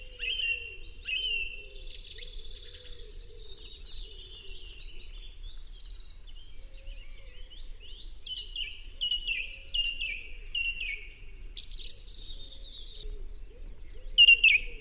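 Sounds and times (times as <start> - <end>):
song thrush singing a rich varied song: 0.0 - 14.8.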